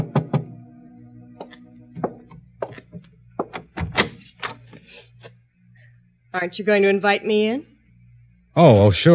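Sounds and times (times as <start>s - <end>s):
knocking on a wooden door: 0.0s - 0.5s, 1.4s - 2.8s, 3.4s - 4.0s
speech: 6.3s - 7.7s, 8.6s - 9.1s.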